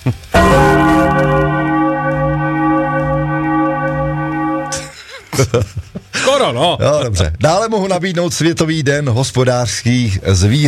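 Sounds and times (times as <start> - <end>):
speech: 0.0 - 0.2, 5.4 - 10.6
church bell struck with deep rich tone: 0.4 - 5.0.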